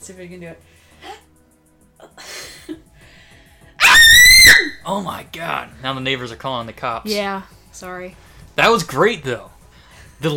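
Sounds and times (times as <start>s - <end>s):
speech: 0.0s - 1.1s, 4.8s - 9.6s, 10.2s - 10.3s
woman screaming into a microphone: 3.8s - 4.8s.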